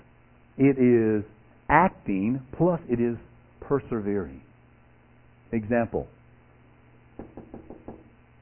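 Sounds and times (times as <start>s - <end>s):
speech: 0.6s - 4.5s, 5.5s - 6.2s
knocking on a door: 7.2s - 8.2s.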